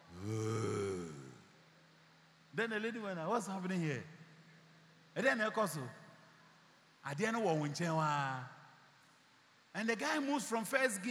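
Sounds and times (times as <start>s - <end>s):
voice imitating a man snoring in his sleep: 0.0s - 1.4s
speech: 2.6s - 4.2s, 5.2s - 6.0s, 7.0s - 8.6s, 9.8s - 11.0s.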